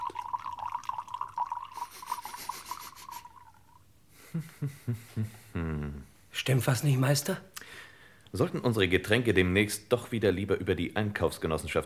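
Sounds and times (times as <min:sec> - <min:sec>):
wine bottle glugging: 0:00.0 - 0:03.8
wine pouring into long-stemmed high-gloss cut glasses: 0:00.0 - 0:03.8
speech: 0:04.4 - 0:11.8.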